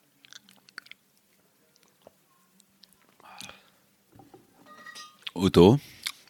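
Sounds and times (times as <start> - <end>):
crunchy chewing of a malty chocolate snack: 0.0 - 3.6
faint whispery breaths: 3.1 - 3.9
speech: 5.4 - 6.0.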